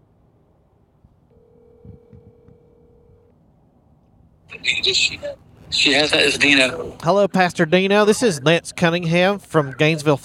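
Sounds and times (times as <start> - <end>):
hum: 0.0 - 10.2
steady electronic phone ring tone on the line: 1.3 - 3.3
speech: 4.5 - 10.2.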